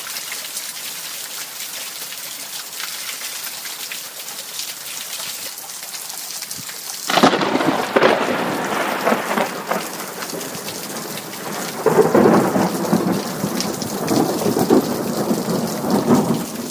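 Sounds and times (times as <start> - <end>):
steady rain: 0.0 - 16.7
rolling thunder: 7.1 - 16.7.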